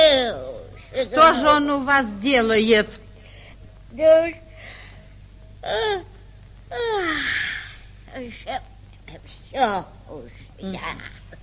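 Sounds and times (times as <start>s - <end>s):
speech: 1.0s - 3.0s, 3.9s - 4.4s, 5.6s - 6.1s, 6.7s - 7.5s, 8.2s - 11.2s
person yawning: 6.7s - 7.9s.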